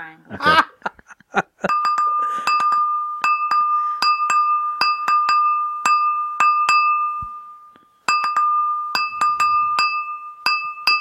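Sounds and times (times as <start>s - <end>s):
Christmas song melody tapped on a glass by hand: 1.6s - 11.0s.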